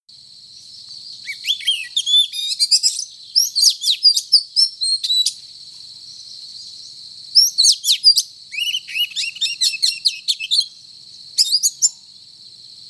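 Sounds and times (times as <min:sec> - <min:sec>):
Oriental magpie-robin singing whistled and buzzy notes: 0:01.1 - 0:05.4, 0:07.4 - 0:10.8, 0:11.4 - 0:12.0.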